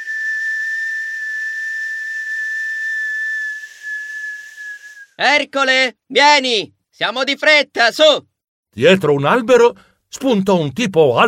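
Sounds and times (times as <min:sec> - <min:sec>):
loud two-finger whistle: 0:00.0 - 0:05.2
speech: 0:05.2 - 0:11.2.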